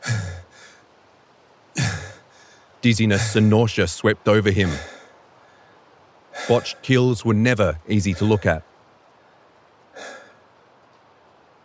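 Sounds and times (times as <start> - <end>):
person panting heavily with rasping gasps: 0.0 - 0.8, 4.6 - 5.7, 6.4 - 6.8, 10.0 - 10.4
speech: 2.8 - 4.9, 6.5 - 8.7.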